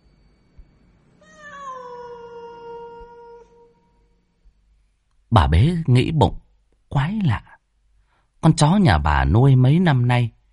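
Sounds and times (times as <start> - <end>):
low hiss: 0.0 - 10.5
cat in a yard meowing mournfully: 1.2 - 4.2
speech: 5.3 - 7.5, 8.4 - 10.4.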